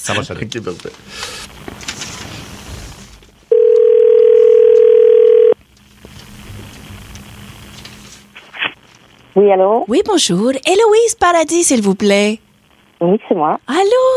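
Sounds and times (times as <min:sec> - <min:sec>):
speech: 0:00.0 - 0:01.6, 0:09.4 - 0:12.4, 0:13.0 - 0:14.1
telephone dial tone while a call is being placed: 0:03.5 - 0:05.6.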